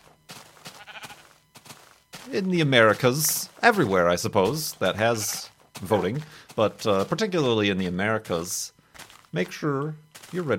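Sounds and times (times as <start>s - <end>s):
small flock of sheep bleating: 0.6s - 1.4s, 5.0s - 5.5s
speech: 2.3s - 10.5s.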